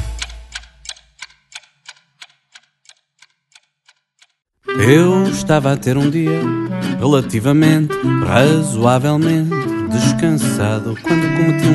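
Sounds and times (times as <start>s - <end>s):
clock ticking: 0.0s - 4.4s
speech: 4.8s - 11.7s.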